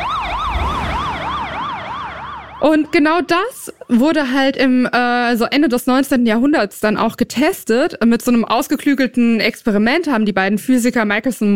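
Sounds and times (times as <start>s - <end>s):
emergency siren wailing: 0.0s - 4.4s
low road rumble: 0.0s - 4.7s
speech: 2.6s - 11.5s.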